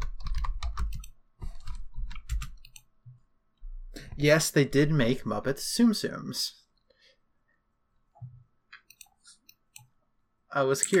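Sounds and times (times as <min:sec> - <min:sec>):
typing a web search on a computer keyboard: 0:00.0 - 0:02.9
speech: 0:04.2 - 0:06.6, 0:10.6 - 0:10.9.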